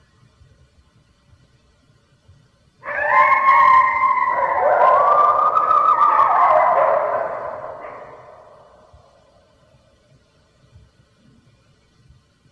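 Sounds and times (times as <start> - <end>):
red wolf howling: 2.8 - 9.1.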